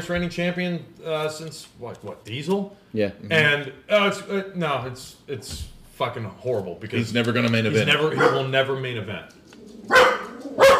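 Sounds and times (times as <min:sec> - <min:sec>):
speech: 0:00.0 - 0:10.2
dog barking: 0:08.2 - 0:08.5, 0:09.9 - 0:10.7.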